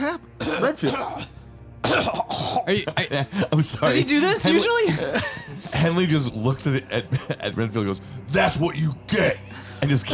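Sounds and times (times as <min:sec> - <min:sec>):
speech: 0:00.1 - 0:10.1
man coughing while collapsing: 0:00.4 - 0:04.0
laughter: 0:02.7 - 0:06.2, 0:06.9 - 0:07.7.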